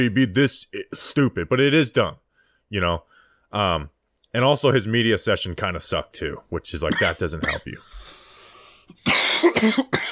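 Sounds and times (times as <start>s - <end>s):
speech: 0.0s - 8.0s, 8.9s - 10.0s
harsh coughing: 6.9s - 7.8s, 8.9s - 10.0s.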